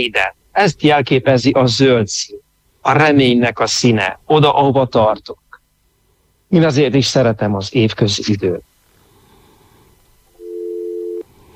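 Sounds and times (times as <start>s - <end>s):
speech: 0.0s - 5.4s, 6.5s - 8.7s
telephone busy signal tone: 10.4s - 11.2s.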